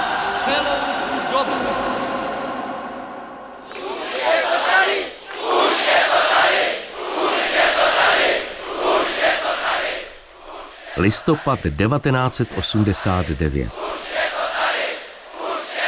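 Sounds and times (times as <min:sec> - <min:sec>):
large crowd cheering and chanting at a march: 0:00.0 - 0:15.8
speech: 0:11.0 - 0:14.3.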